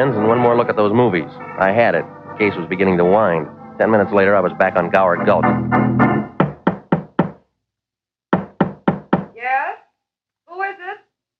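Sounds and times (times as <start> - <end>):
speech: 0.0 - 6.2
firm knocking on a door: 6.4 - 7.5, 8.3 - 9.4.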